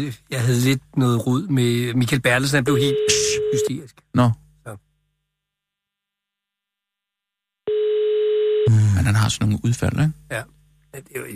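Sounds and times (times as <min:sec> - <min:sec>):
speech: 0:00.0 - 0:04.8, 0:08.7 - 0:11.3
telephone busy signal tone: 0:02.8 - 0:03.7, 0:07.7 - 0:08.7.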